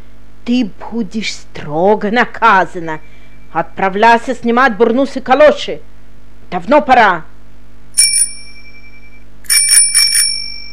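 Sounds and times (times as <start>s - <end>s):
speech: 0.5s - 5.9s, 6.5s - 7.3s
metallic bell ringing: 8.0s - 10.7s.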